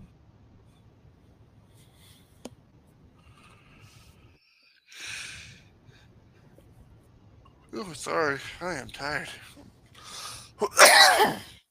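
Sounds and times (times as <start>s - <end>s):
breathy intake: 4.9s - 5.7s, 10.0s - 10.6s
speech: 7.8s - 9.5s, 10.6s - 11.5s
person coughing: 10.6s - 11.5s.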